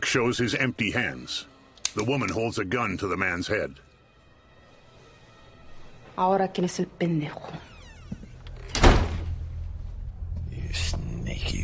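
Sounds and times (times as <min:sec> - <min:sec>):
speech: 0:00.1 - 0:03.9, 0:06.2 - 0:07.7, 0:10.7 - 0:11.6
door opening thunk: 0:07.8 - 0:09.3.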